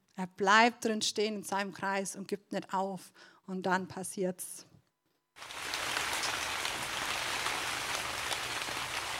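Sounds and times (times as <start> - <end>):
speech: 0.2 - 4.7
gentle steady rain pattering with individual drops ticking: 5.4 - 9.1.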